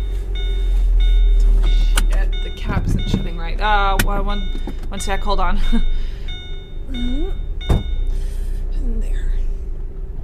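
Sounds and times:
low rumble: 0.0 - 10.2
speech: 3.6 - 6.0, 6.9 - 7.5
truck door being slammed shut: 7.6 - 8.0.

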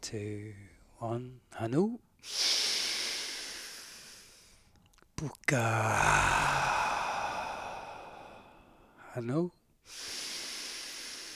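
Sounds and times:
speech: 0.0 - 2.5, 5.2 - 6.7, 9.2 - 10.2
breathing in through the nose and out through the mouth: 2.2 - 4.8, 5.5 - 9.2, 9.8 - 11.3.

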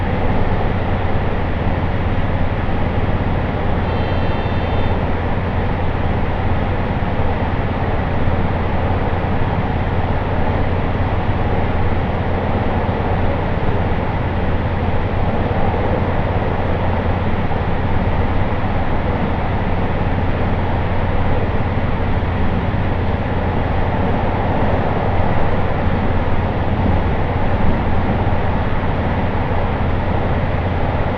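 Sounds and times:
deep droning hum: 0.0 - 31.1
train rumble recorded inside the carriage: 0.0 - 31.1
faint thin squeal: 3.8 - 5.1.

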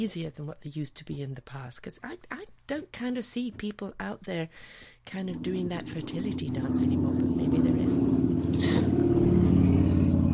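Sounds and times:
speech: 0.0 - 8.1
car engine rumbling outside a window: 5.4 - 10.3.

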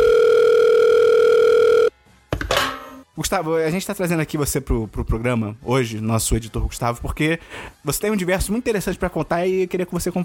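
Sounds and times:
steady telephone tone while placing a call: 0.0 - 2.0
speech: 3.3 - 10.2.

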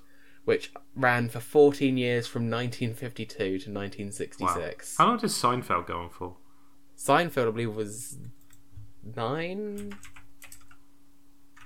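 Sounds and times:
speech: 0.5 - 6.4, 7.0 - 8.4, 9.0 - 10.1
mechanical keyboard clicks: 9.8 - 10.8.

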